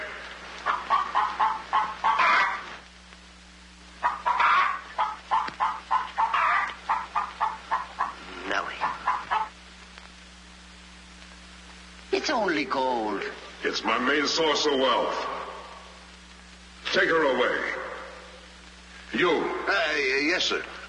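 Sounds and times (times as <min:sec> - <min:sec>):
low hum: 0:00.0 - 0:20.8
hen clucking: 0:00.6 - 0:02.8, 0:04.0 - 0:09.6
speech: 0:12.3 - 0:15.3, 0:17.0 - 0:17.7, 0:19.2 - 0:20.7.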